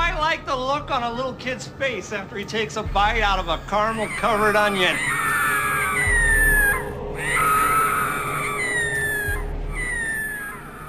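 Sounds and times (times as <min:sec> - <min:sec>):
low rumbling background: 0:00.0 - 0:10.8
speech: 0:00.4 - 0:05.2
several people screaming: 0:03.8 - 0:10.8.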